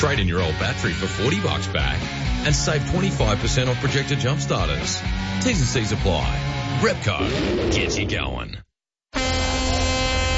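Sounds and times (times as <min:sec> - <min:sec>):
speech: 0:00.0 - 0:09.2
cruise ship horn blast: 0:09.2 - 0:10.3.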